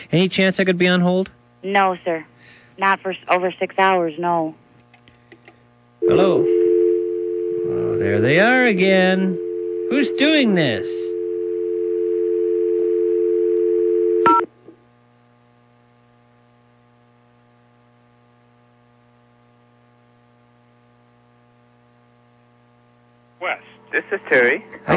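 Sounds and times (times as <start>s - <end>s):
faint low hum: 0.0s - 14.8s
speech: 0.1s - 4.6s, 6.0s - 6.6s, 8.0s - 11.1s, 24.0s - 24.9s
telephone dial tone: 11.1s - 14.4s.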